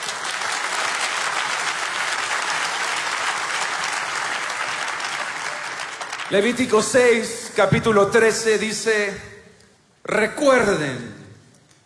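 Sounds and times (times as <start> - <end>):
congregation applause during a church sermon: 0.0 - 6.7
speech: 6.3 - 9.3, 10.1 - 11.1.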